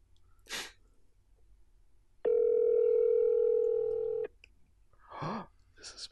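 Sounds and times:
breathy puff: 0:00.5 - 0:00.8
electronic ring tone on a phone line calling a hotline: 0:02.3 - 0:04.3
speech: 0:05.8 - 0:06.1.

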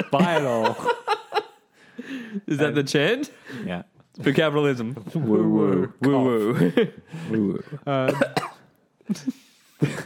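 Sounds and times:
speech: 0:00.0 - 0:01.2, 0:02.3 - 0:08.5, 0:09.1 - 0:10.0
laughter: 0:00.0 - 0:01.7
short harsh coughs: 0:08.1 - 0:08.7.

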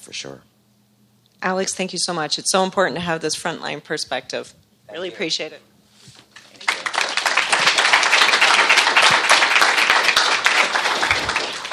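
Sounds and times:
speech: 0:00.0 - 0:00.5, 0:01.4 - 0:05.7
audience applause: 0:06.3 - 0:11.7.

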